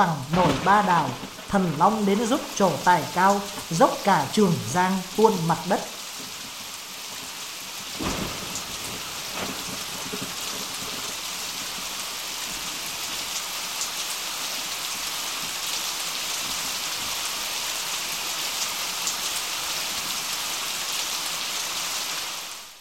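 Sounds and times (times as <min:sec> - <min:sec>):
speech: 0:00.0 - 0:06.0
heavy rain pouring: 0:00.0 - 0:22.8
thunder: 0:00.2 - 0:02.6, 0:07.9 - 0:12.8.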